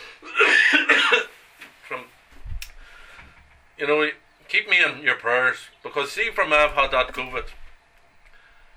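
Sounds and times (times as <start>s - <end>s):
preacher with a sore throat after COVID coughing: 0.2s - 1.4s
speech: 3.8s - 7.6s.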